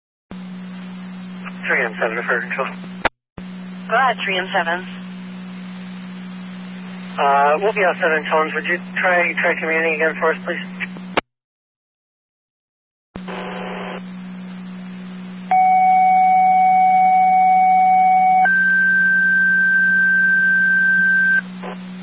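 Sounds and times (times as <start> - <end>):
burst of radio static: 0.3 - 11.2, 13.2 - 15.3, 18.5 - 22.0
constant hum: 0.3 - 11.2, 13.2 - 22.0
speech: 1.7 - 3.0, 3.9 - 5.0, 7.2 - 10.8.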